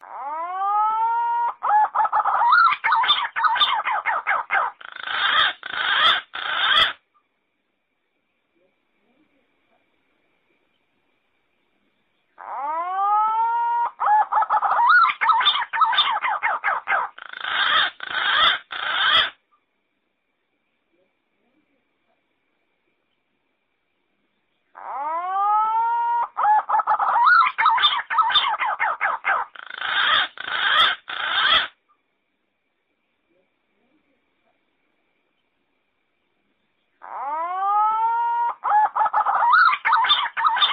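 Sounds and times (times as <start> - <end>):
thick-billed green pigeon calling: 0.0 - 7.0, 12.3 - 19.4, 24.7 - 31.8, 37.0 - 40.7.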